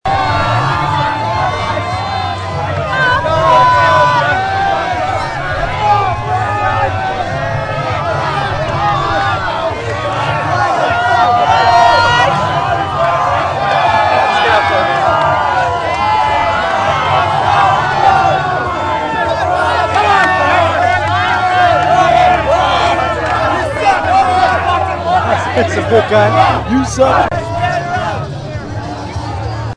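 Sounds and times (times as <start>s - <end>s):
crowd cheering in a pit: 0.0s - 29.7s
laughter: 0.5s - 28.6s.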